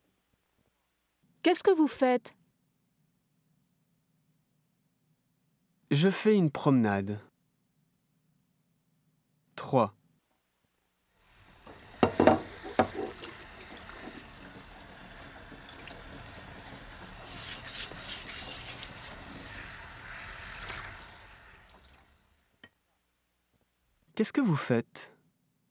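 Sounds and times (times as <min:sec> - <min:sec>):
speech: 0:01.4 - 0:02.4, 0:05.9 - 0:07.3, 0:09.7 - 0:10.0, 0:24.2 - 0:25.1
running water in a sink: 0:11.3 - 0:22.6
crockery clinking in a sink: 0:11.7 - 0:14.6.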